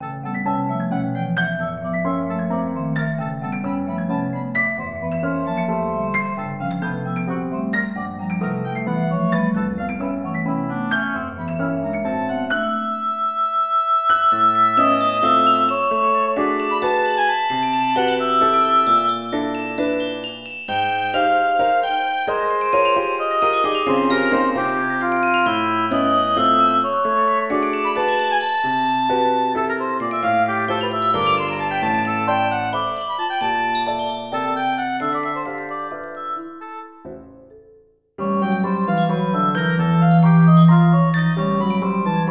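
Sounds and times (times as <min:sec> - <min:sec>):
oboe playing a waltz: 0:00.0 - 0:37.4, 0:38.2 - 0:42.3
piano playing a waltz: 0:00.0 - 0:42.3
percussion playing a waltz: 0:14.3 - 0:37.5, 0:38.2 - 0:42.3.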